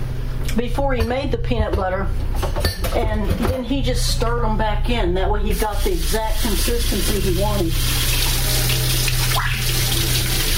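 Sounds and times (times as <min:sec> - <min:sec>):
speech: 0:00.6 - 0:08.3
hands washed under running tap water: 0:05.9 - 0:10.5.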